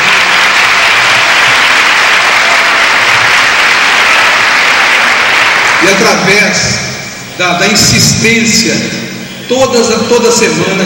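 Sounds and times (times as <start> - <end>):
crowd applauding: 0.0 - 6.3
speech: 5.8 - 6.8, 7.4 - 10.8.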